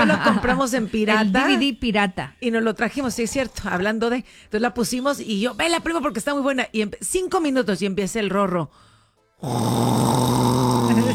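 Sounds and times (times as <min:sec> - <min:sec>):
laughter: 0:00.0 - 0:00.8
speech: 0:00.0 - 0:11.1
voice imitating loud snoring: 0:09.4 - 0:11.1.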